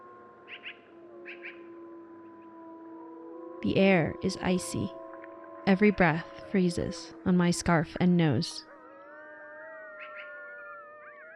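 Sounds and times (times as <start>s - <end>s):
wolves howling in the predawn dark: 0.0s - 11.3s
speech: 3.6s - 5.0s, 5.6s - 8.7s
brief higher wolf yips: 9.6s - 11.3s.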